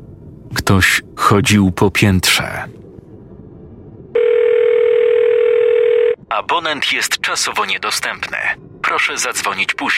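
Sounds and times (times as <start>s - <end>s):
speech: 0.7s - 2.8s, 6.4s - 9.9s
mobile phone telephone dial tone: 4.2s - 6.2s.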